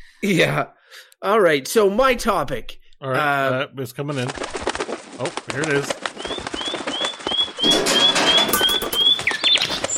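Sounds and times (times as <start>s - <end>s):
speech: 0.2s - 4.6s, 5.2s - 6.4s, 7.6s - 8.1s
pigeon calling in short rising chirps: 6.2s - 9.9s.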